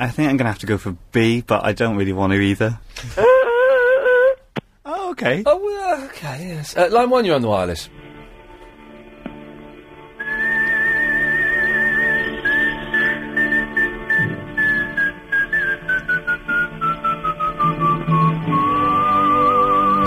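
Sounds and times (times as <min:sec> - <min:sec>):
speech: 0:00.0 - 0:03.5, 0:05.1 - 0:08.0
steady pulsing instrumental backing of a song: 0:07.3 - 0:20.0
whistled melody in a played song: 0:09.7 - 0:20.0.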